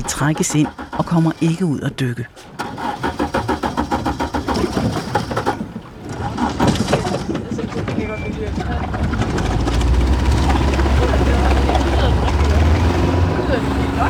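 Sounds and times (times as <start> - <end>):
boat engine on a diving research ship starting and running: 0.0 - 14.0
speech: 0.2 - 2.8, 8.0 - 9.4, 13.5 - 14.0
laughter: 6.3 - 14.0.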